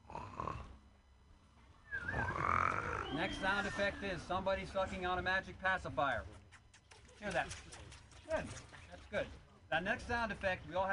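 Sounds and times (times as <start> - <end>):
voice imitating snoring of someone falling asleep: 0.0 - 0.8, 2.2 - 3.1
speech: 3.2 - 6.4, 7.2 - 10.9.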